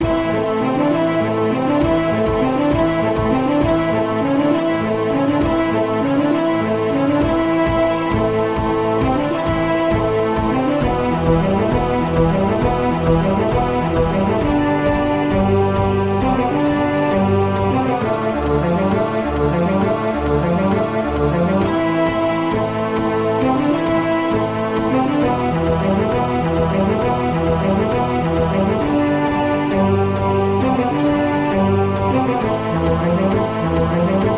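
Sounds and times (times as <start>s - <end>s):
brass: 0.0s - 34.3s
percussion: 0.0s - 34.3s
strings: 0.0s - 34.3s.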